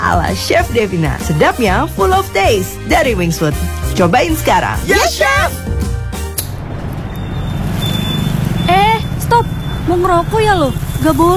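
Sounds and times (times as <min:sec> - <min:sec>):
speech: 0:00.1 - 0:05.7, 0:09.3 - 0:11.3
broad road hiss from street traffic: 0:06.4 - 0:11.3
street traffic stuck in a jam, low engine rumble: 0:06.4 - 0:11.3.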